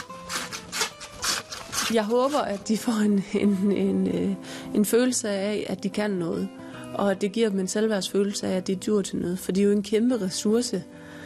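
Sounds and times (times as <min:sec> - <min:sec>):
hand saw cutting through wood: 0:00.0 - 0:02.8
speech: 0:01.9 - 0:11.0.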